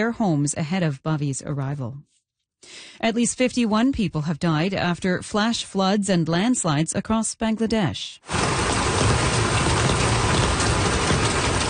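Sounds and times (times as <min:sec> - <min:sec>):
speech: 0:00.0 - 0:08.6
heavy monsoon rain falling in Bangladesh: 0:08.3 - 0:11.6.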